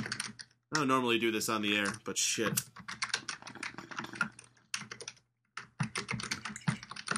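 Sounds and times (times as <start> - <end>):
fingers typing on a computer keyboard: 0.0 - 0.9, 2.6 - 7.1
speech: 0.7 - 2.8.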